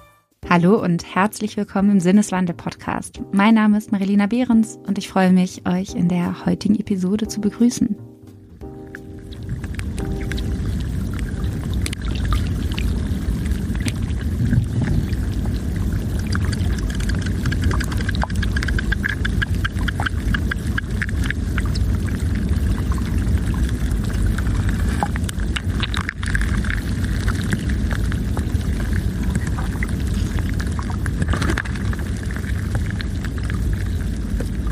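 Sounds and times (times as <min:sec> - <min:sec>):
speech: 0:00.6 - 0:08.1
meltwater flowing and gurgling inside a glacier: 0:08.8 - 0:34.7
glacier ice crackling: 0:08.9 - 0:34.7.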